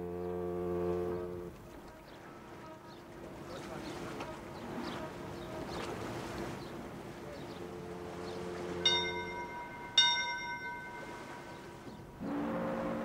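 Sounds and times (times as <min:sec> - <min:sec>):
huge steamship horn blast: 0:00.0 - 0:06.2, 0:07.5 - 0:13.0
steamship departure bell strikes: 0:08.8 - 0:11.7.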